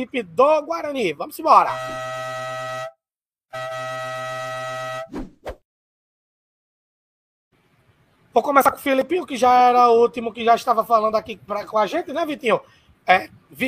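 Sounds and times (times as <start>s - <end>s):
speech: 0.0s - 2.1s, 8.4s - 13.6s
podcast jingle air horn blasts with rich harmonic tones: 1.6s - 5.1s.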